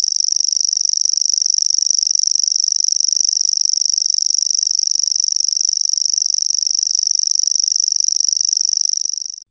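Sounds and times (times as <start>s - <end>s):
common grasshopper warbler reeling song: 0.0s - 9.4s.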